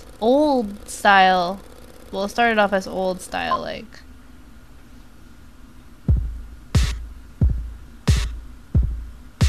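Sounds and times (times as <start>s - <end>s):
speech: 0.2s - 4.0s
slow heartbeat thumping: 6.1s - 9.4s.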